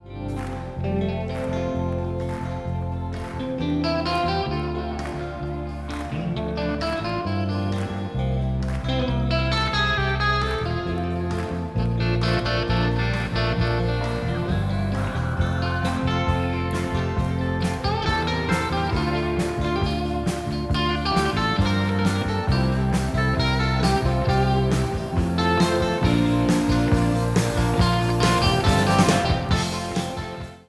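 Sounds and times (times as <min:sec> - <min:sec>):
1980 Schecter Strat sunburst electric guitar: 0:00.0 - 0:30.6.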